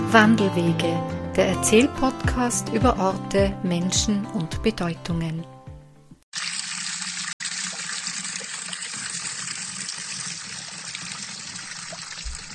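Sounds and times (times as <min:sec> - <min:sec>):
speech: 0:00.1 - 0:05.5
spring water flowing from a fountain's source in a Tyrolean valley: 0:06.3 - 0:12.5.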